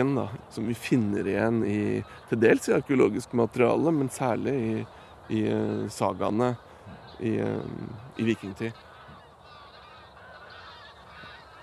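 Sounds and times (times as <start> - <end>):
speech: 0.0 - 8.9
large flock of Canada geese honking as they take off in Norway: 0.0 - 11.6.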